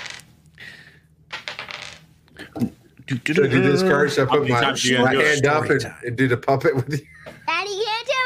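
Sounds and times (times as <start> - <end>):
dice clattering and tumbling across a hard surface: 0.0 - 0.3, 1.3 - 2.1
speech: 2.6 - 7.3.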